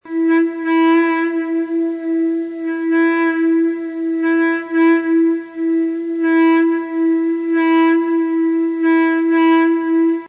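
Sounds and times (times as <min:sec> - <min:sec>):
electric guitar ebow note in E: 0:00.0 - 0:10.2.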